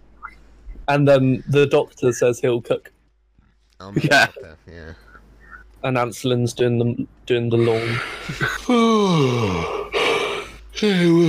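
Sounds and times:
speech: 0.9 - 3.0, 3.8 - 5.0, 5.8 - 9.8, 10.8 - 11.2
big drawn-out human yawn: 8.7 - 11.2.

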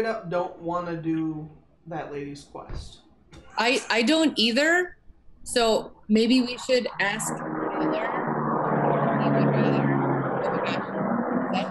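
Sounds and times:
speech: 0.0 - 3.0, 3.6 - 8.2
airplane drone: 5.5 - 11.6.

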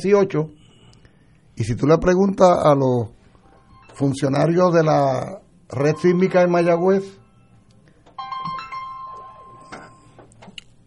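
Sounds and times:
speech: 0.0 - 0.6, 1.6 - 3.2, 4.0 - 7.2
electronic telephone ringtone: 3.4 - 4.8, 5.7 - 10.4.

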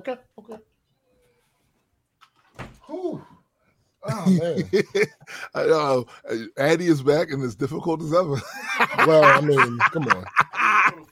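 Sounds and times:
speech: 0.0 - 0.7, 4.0 - 11.1
door shutting with a faint click and dull thud: 2.4 - 2.8
laughter: 4.0 - 6.0, 8.2 - 11.1.

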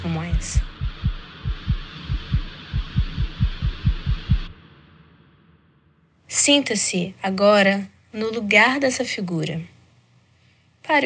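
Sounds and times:
speech: 0.0 - 0.8, 6.4 - 9.7
strong rapid heartbeat thumping: 0.0 - 4.5.

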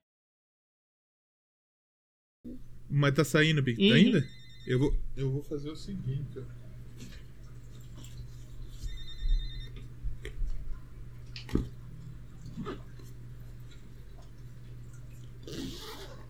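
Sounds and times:
speech: 2.9 - 7.2
phone ringtone: 3.9 - 4.9, 8.8 - 9.8.

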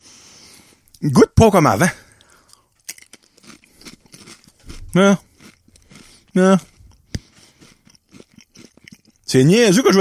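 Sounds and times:
speech: 1.0 - 2.0, 5.0 - 5.3, 6.4 - 6.7, 9.3 - 9.9
Pringles potato chips crunching while chewed: 2.1 - 9.9.

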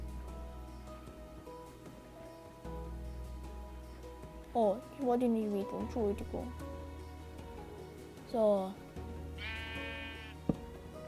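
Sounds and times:
speech: 4.5 - 6.8, 8.3 - 9.5
sheep bleating in a video game: 9.4 - 10.4.

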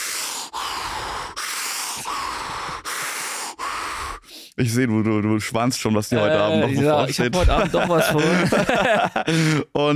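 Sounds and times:
forceful deep breathing in Wim Hof style: 0.0 - 4.6, 9.2 - 9.7
speech: 4.6 - 9.9
laughter: 6.2 - 9.6.

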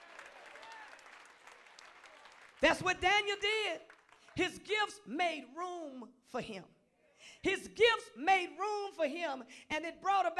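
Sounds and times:
audience clapping: 0.0 - 4.5
speech: 2.6 - 10.3.

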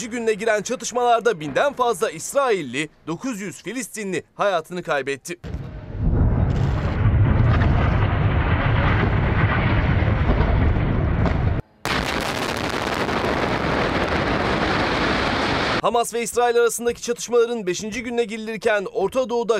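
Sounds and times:
speech: 0.0 - 5.7, 15.8 - 19.5
bomb explosions from airstrikes: 5.4 - 15.8.

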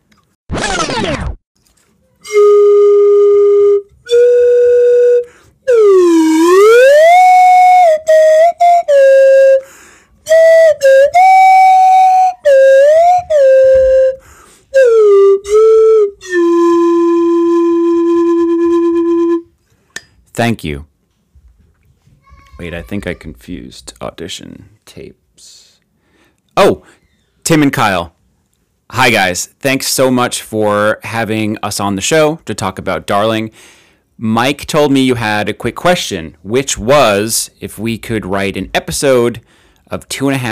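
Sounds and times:
speech: 0.9 - 1.3, 20.4 - 20.9, 22.7 - 25.2, 27.5 - 28.2, 29.0 - 40.5
slide whistle playing notes and glides: 2.2 - 19.5.

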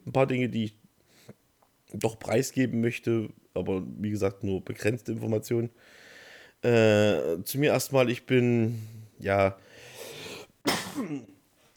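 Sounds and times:
speech: 0.2 - 0.8, 1.9 - 9.7, 11.0 - 11.3
person coughing: 10.3 - 11.4
raspy throat clearing: 10.7 - 11.4.

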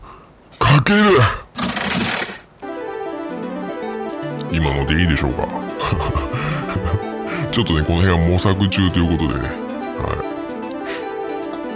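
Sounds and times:
speech: 0.9 - 2.2, 4.5 - 6.2, 7.5 - 10.2
ranking slot machine in a game spinning: 1.8 - 11.7
bright electronic tones: 2.6 - 11.7
laughter: 5.7 - 7.9.

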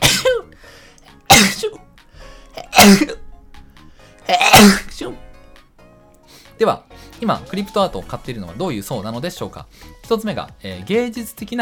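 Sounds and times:
person sneezing: 0.0 - 0.6, 1.2 - 1.8, 2.6 - 3.2, 4.3 - 5.2
quiet breaths: 0.5 - 1.1, 2.0 - 2.6, 3.8 - 4.2, 6.2 - 7.2, 9.7 - 10.0
speech: 1.6 - 2.0, 2.8 - 3.2, 4.3 - 5.2, 6.6 - 11.6.

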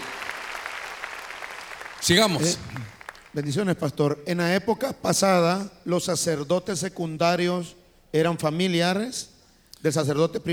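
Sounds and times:
audience applauding: 0.0 - 3.4
speech: 2.0 - 2.7, 3.4 - 10.5.

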